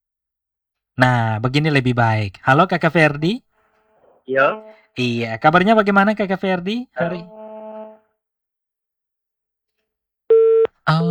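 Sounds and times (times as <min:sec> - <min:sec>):
speech: 0:01.0 - 0:03.5, 0:04.3 - 0:07.4, 0:10.9 - 0:11.0
telephone line tone after a phone-in call is cut off: 0:10.3 - 0:10.7.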